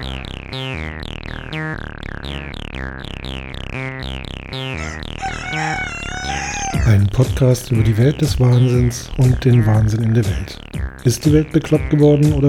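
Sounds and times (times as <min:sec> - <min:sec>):
rooster crowing: 0:04.8 - 0:07.1
chickens clucking: 0:04.8 - 0:09.7
speech: 0:07.2 - 0:12.4.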